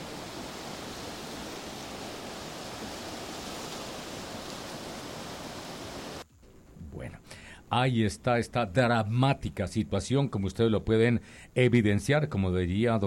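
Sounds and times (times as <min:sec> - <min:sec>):
rushing floodwater from an overflowing river flooding a farm: 0:00.0 - 0:06.2
speech: 0:07.7 - 0:13.0.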